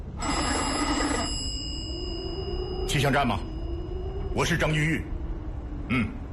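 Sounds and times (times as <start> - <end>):
telephone bell ringing: 0.2 - 3.6
speech: 2.9 - 3.5, 4.3 - 5.1, 5.9 - 6.2.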